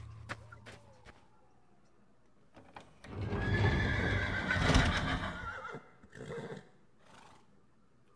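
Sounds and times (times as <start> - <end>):
horse whinnying: 3.1 - 7.3.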